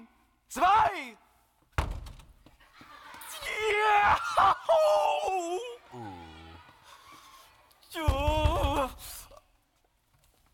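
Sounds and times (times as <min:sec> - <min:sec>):
speech: 0:00.5 - 0:01.3, 0:07.9 - 0:09.2
heavy thud against a wooden door: 0:01.8 - 0:02.3
laughter: 0:02.6 - 0:09.2.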